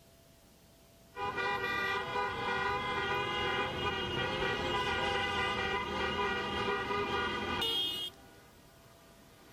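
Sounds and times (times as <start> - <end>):
street traffic rumble: 0.0 - 9.5
car horns honking at a street protest: 1.2 - 8.2.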